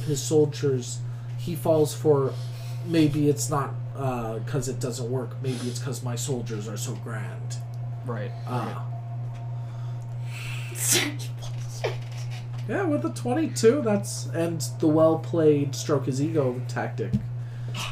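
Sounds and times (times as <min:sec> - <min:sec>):
steady low electrical hum: 0:00.0 - 0:17.8
speech: 0:00.1 - 0:08.9, 0:10.8 - 0:12.0, 0:12.7 - 0:17.8
person sneezing: 0:10.7 - 0:11.4.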